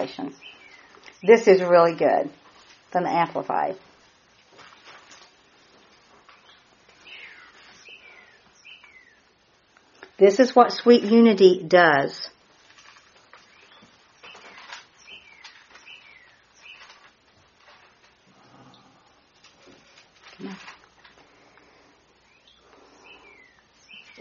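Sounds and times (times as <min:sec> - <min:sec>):
speech: 0:00.0 - 0:00.6, 0:01.2 - 0:03.9, 0:10.2 - 0:12.4
bird singing outdoors in short chirping phrases: 0:00.0 - 0:02.1, 0:06.3 - 0:09.3, 0:13.3 - 0:17.2, 0:22.2 - 0:24.2
steady hiss: 0:00.0 - 0:24.2.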